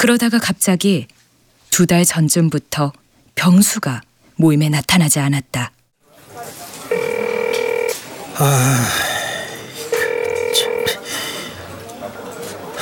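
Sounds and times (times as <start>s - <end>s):
speech: 0.0s - 5.8s, 8.4s - 9.0s
phone line ringing tone through the earpiece: 6.9s - 8.4s, 9.6s - 11.1s
brief vocal sound: 8.4s - 11.6s.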